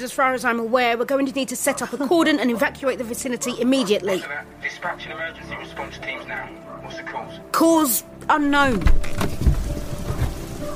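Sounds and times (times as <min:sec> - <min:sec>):
speech: 0:00.0 - 0:09.4
freezing rain pouring: 0:08.4 - 0:10.7
low rumbling thumps: 0:08.6 - 0:10.6.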